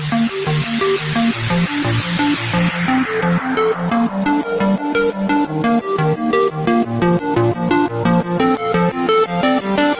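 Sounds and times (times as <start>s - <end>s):
drumstep music: 0.0s - 9.9s.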